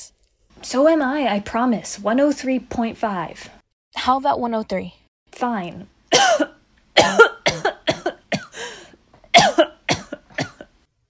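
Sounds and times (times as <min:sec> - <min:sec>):
speech: 0:00.6 - 0:06.5
person coughing in harsh bursts: 0:06.1 - 0:10.8
short gasping breaths: 0:08.5 - 0:09.0.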